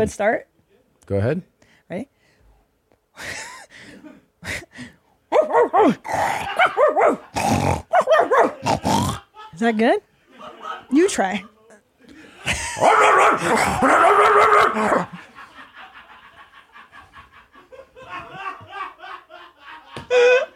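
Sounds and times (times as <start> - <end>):
speech: 0.0 - 0.5, 1.1 - 2.2, 3.2 - 3.5, 4.4 - 11.5, 12.5 - 15.2, 20.1 - 20.5
person imitating dog barks in a barking contest: 5.3 - 9.3, 12.8 - 15.1
person imitating dog growls: 5.8 - 6.6, 7.2 - 9.3, 12.8 - 15.1
laughter: 6.1 - 7.4, 10.2 - 11.4, 12.0 - 20.5.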